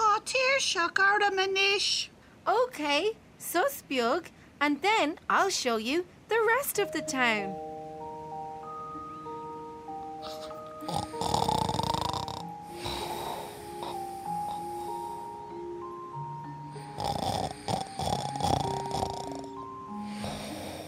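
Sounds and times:
faint sustained tones: 0.0 - 20.8
speech: 0.6 - 7.6
loud snoring: 10.2 - 15.2, 16.8 - 20.8.

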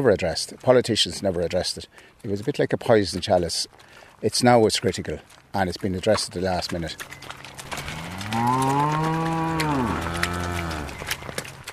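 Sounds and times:
speech: 0.0 - 7.3, 8.3 - 10.1
dairy cow mooing as it is let out after morning milking: 7.7 - 11.2.

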